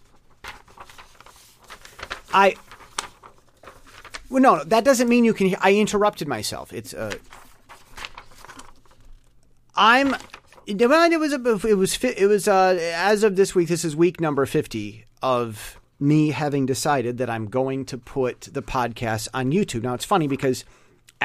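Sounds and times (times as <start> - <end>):
paper crinkling and rustling: 0.0 - 10.7
speech: 2.4 - 2.7, 4.3 - 7.4, 9.8 - 21.2.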